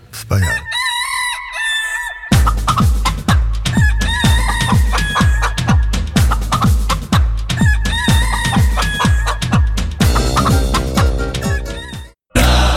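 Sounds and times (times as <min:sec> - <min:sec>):
speech: 0:00.3 - 0:00.8
rooster crowing and clucking: 0:00.3 - 0:02.6, 0:03.7 - 0:05.9, 0:07.6 - 0:09.6
steady punchy drum beat in a loud music track: 0:02.3 - 0:12.6.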